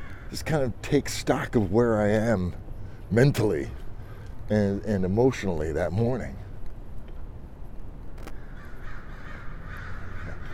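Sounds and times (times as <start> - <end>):
crows cawing: 0.0 - 0.4, 8.3 - 10.5
constant low outdoor rumble: 0.0 - 10.5
speech: 0.3 - 3.8, 4.5 - 6.4.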